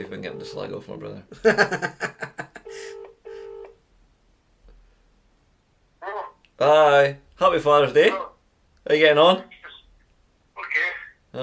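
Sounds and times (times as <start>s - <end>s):
outgoing phone call ringing in a double-pulse pattern: 0.0s - 0.8s, 2.6s - 3.8s
speech: 0.0s - 2.9s, 6.6s - 8.3s, 8.9s - 9.6s
telephone dialing tones: 0.1s - 0.7s, 2.7s - 3.8s
laughter: 1.3s - 2.8s.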